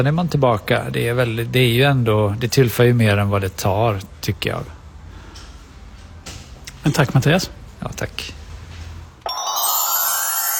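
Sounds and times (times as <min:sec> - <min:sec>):
speech: 0:00.0 - 0:04.8, 0:06.8 - 0:08.4
telephone ringing with a bright electronic tone: 0:09.3 - 0:10.5.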